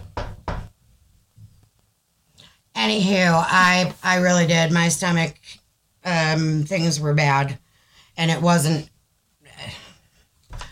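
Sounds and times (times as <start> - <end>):
sharp knocks on wood: 0.0 - 0.7
speech: 2.9 - 7.6, 8.2 - 8.9.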